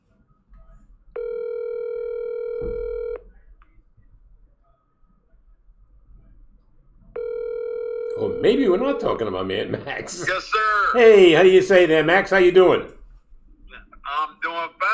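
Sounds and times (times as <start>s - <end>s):
telephone tones as a call is placed: 1.2s - 3.3s, 7.2s - 9.2s
speech: 8.2s - 13.0s.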